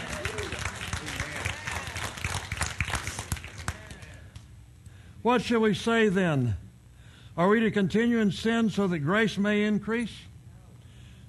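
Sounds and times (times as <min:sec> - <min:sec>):
audience applauding: 0:00.0 - 0:04.4
speech: 0:05.2 - 0:06.6, 0:07.4 - 0:10.3.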